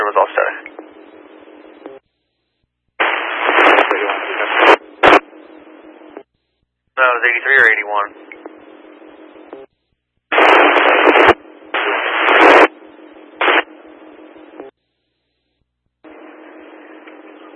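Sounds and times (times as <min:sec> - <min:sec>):
radio static hissing: 0:00.0 - 0:01.2, 0:03.0 - 0:06.2, 0:07.0 - 0:09.7, 0:10.3 - 0:14.7
loud crackling surges of radio static: 0:03.0 - 0:05.2, 0:10.3 - 0:12.7
speech: 0:07.2 - 0:08.4.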